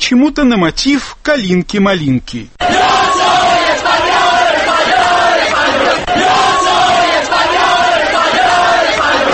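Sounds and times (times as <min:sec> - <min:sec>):
speech: 0:00.1 - 0:02.9
large crowd chanting celebration slogans in unison: 0:02.6 - 0:09.3.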